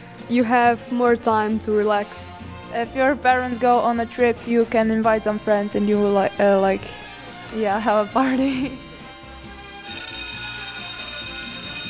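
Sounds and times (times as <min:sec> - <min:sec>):
speech: 0:00.3 - 0:08.9
school bell ringing in a shrill metallic trill: 0:09.8 - 0:11.8.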